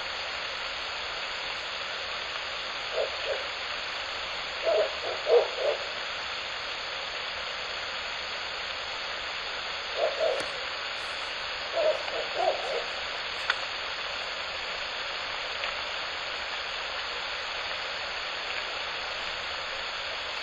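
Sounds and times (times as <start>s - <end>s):
background hiss: 0.0s - 20.3s
owl hooting at night: 2.8s - 3.7s, 4.6s - 6.0s, 9.9s - 10.7s, 11.7s - 13.2s.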